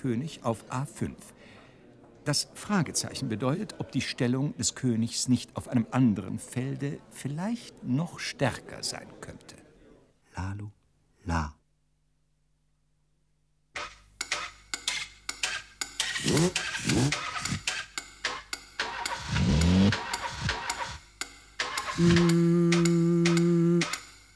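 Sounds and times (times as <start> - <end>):
speech: 0.0 - 1.6, 2.3 - 9.6, 10.4 - 11.6, 16.2 - 17.2, 22.0 - 23.0
steady mechanical ticking: 14.2 - 24.3
car engine revving in rising bursts: 19.2 - 20.6
long loud sustained tone: 22.0 - 23.9.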